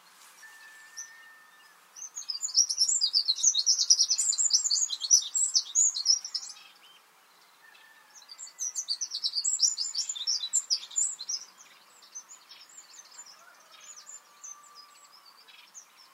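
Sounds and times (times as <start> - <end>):
Eurasian wren Troglodytes troglodytes singing: 0.6 - 16.1.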